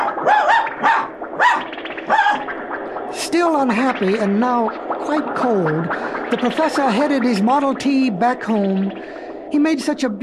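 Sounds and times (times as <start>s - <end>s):
dog barking: 0.0s - 2.4s
speech: 3.3s - 10.2s.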